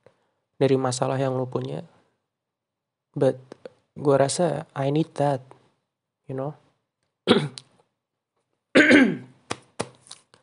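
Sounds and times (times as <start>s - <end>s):
speech: 0.6s - 2.0s, 3.2s - 5.6s, 6.3s - 6.6s, 7.3s - 7.6s
person coughing: 7.3s - 7.6s, 8.8s - 9.4s.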